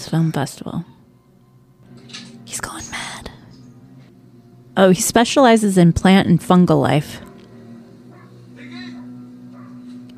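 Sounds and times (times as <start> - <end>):
steady low electrical hum: 0.0 - 10.1
speech: 0.1 - 1.0, 4.8 - 7.2
dog in a film barking and whimpering: 8.1 - 10.1.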